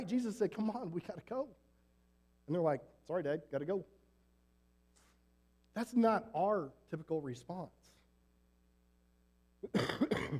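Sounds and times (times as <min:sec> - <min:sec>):
speech: 0:00.0 - 0:01.7, 0:02.5 - 0:04.0, 0:05.8 - 0:08.0, 0:09.6 - 0:10.3
short throat-clearing cough: 0:09.6 - 0:10.3.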